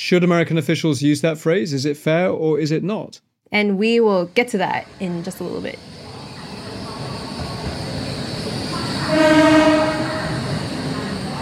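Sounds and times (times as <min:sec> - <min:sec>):
speech: 0:00.0 - 0:06.0
trains rumbling at a railway station in Luang Prabang Laos: 0:04.4 - 0:11.4
train horn at a railway station in Luang Prabang Laos: 0:08.9 - 0:10.8.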